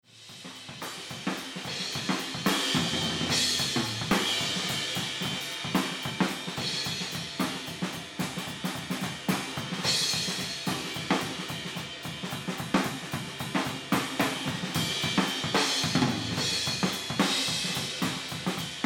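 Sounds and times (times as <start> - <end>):
drums mix in a room with limiter on: 0.0 - 18.8.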